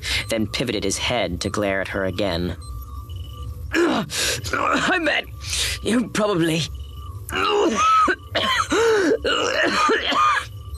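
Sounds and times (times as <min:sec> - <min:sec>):
speech: 0:00.3 - 0:02.8, 0:04.0 - 0:10.3
sick male guard's thick coughing fit: 0:07.4 - 0:10.5.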